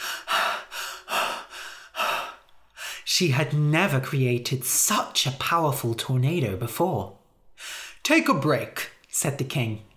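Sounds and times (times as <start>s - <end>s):
woman panting heavily after exertion: 0.0s - 3.1s
speech: 3.2s - 7.2s, 8.1s - 9.9s.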